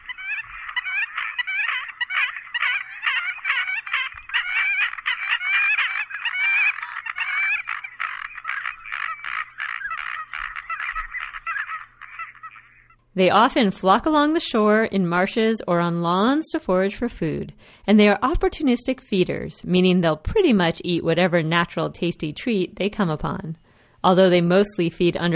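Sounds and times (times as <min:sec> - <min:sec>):
American coots giving crackling grunting croaking calls: 0:00.0 - 0:13.0
speech: 0:13.2 - 0:25.3.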